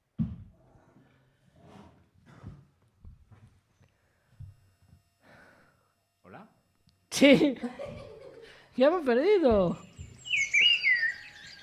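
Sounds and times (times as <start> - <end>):
speech: 7.2 - 7.9, 8.8 - 9.9
laughter: 7.2 - 8.7
person whistling an imitation of birds chirping: 9.9 - 11.6.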